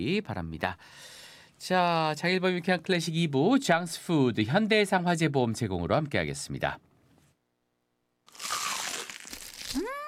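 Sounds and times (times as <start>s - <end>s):
speech: 0.0s - 6.9s
crunch of someone biting into crispy fried chicken: 8.3s - 10.0s.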